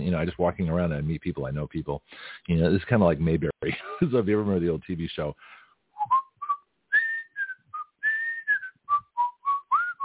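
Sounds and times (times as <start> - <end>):
speech: 0.1 - 6.2
person whistling a short bright melody: 6.0 - 10.0.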